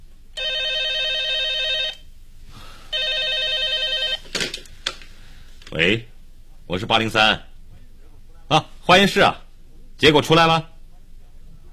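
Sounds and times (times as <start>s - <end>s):
electric telephone bell ringing in an office: 0.4s - 2.0s, 2.9s - 4.2s
speech: 5.8s - 6.1s, 6.7s - 7.5s, 8.5s - 9.4s, 10.0s - 10.7s.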